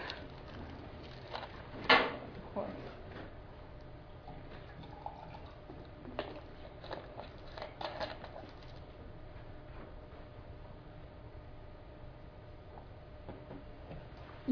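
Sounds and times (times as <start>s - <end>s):
steady low hum: 0.0s - 14.4s
speech: 2.6s - 3.0s
water being poured into a glass for drinking: 4.6s - 5.6s.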